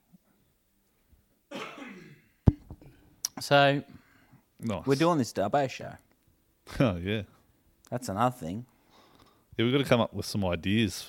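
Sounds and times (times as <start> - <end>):
person coughing roughly: 1.5 - 2.4
speech: 3.4 - 4.0, 4.6 - 6.0, 6.7 - 8.7, 9.6 - 11.0.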